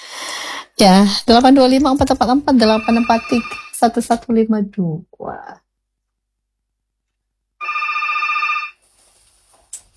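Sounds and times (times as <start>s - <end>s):
speech: 0.8s - 5.6s
telephone ringing on a radio call-in line: 2.6s - 4.0s, 7.6s - 8.8s.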